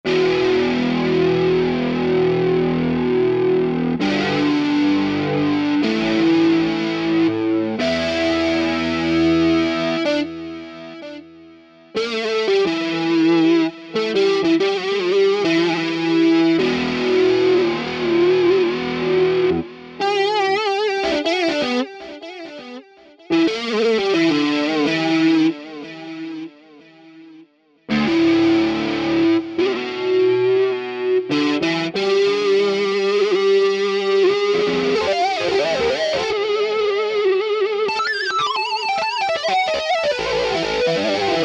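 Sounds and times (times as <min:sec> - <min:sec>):
big electric lead guitars: 0:00.0 - 0:41.4.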